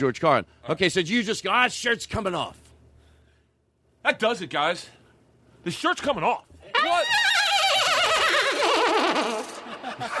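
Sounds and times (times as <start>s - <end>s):
speech: 0.0s - 2.6s, 4.0s - 5.0s, 5.6s - 7.3s
horse-like whinny: 6.8s - 9.6s
laughter: 7.8s - 10.1s.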